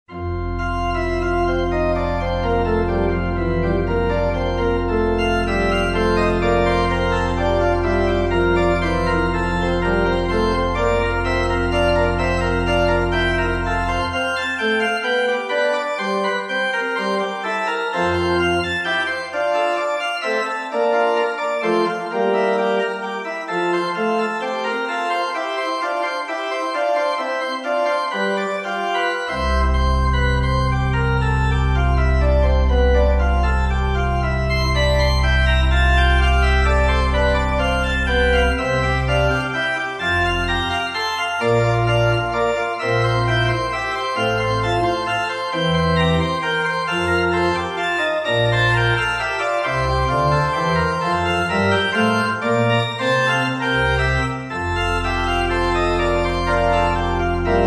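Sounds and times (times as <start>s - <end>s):
organ prelude in F: 0.1s - 57.6s.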